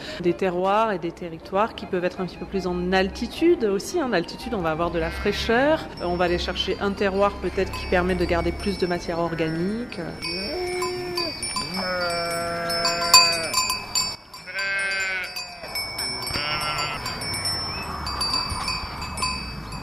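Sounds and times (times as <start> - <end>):
speech: 0.2 - 10.6
Bizet and other French breed sheep bleating in an outdoor flock: 5.0 - 5.5, 9.3 - 13.6, 14.4 - 17.3
bells clinking in an outdoor flock: 5.3 - 19.8.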